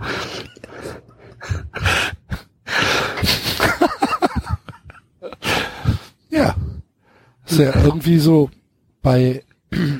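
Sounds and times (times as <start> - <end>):
exaggerated heavy breathing at the microphone: 0.0 - 3.6, 5.3 - 7.5
speech: 7.6 - 9.9.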